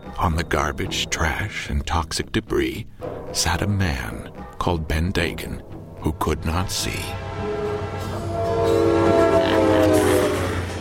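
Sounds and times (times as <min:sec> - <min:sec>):
speech: 0:00.2 - 0:07.2
steam train rumbling along: 0:06.9 - 0:10.8.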